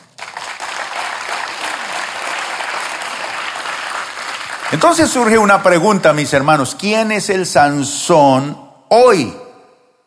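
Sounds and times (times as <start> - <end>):
audience applauding: 0.0 - 5.5
speech: 4.7 - 9.4.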